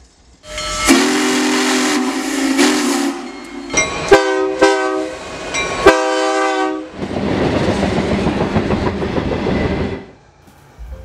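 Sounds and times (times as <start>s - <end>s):
long freight train pulled by locomotives rolling past: 0.0s - 11.0s
train horn blasts: 0.4s - 5.2s, 5.8s - 7.0s.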